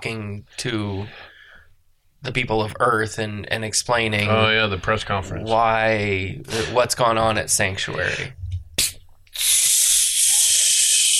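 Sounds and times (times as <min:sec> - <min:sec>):
speech: 0:00.0 - 0:01.3, 0:02.2 - 0:09.5
air hissing out of a balloon: 0:08.8 - 0:11.1.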